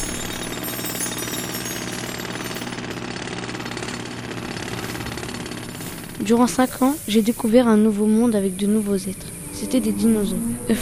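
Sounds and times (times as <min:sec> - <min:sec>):
loud jackhammer pounding: 0:00.0 - 0:09.4
heavy engine-like drone: 0:04.5 - 0:10.8
speech: 0:06.2 - 0:10.8.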